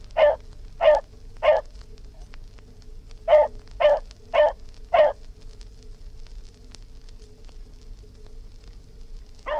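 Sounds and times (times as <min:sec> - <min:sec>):
constant hum: 0:00.0 - 0:09.5
dog barking: 0:00.2 - 0:01.7, 0:03.3 - 0:05.2.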